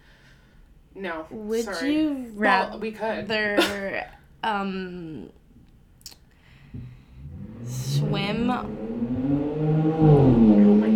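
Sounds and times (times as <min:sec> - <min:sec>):
speech: 0:01.0 - 0:05.4, 0:07.6 - 0:10.4
loud car driving past: 0:06.8 - 0:10.9.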